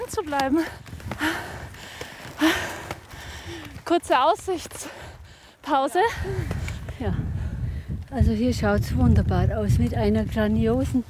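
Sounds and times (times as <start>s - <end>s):
speech: 0.1s - 1.6s, 3.5s - 7.3s, 8.1s - 11.0s
heavy breathing during uphill climb: 0.6s - 3.9s, 4.7s - 8.0s
loud strained gasps: 0.8s - 3.8s, 4.7s - 8.0s.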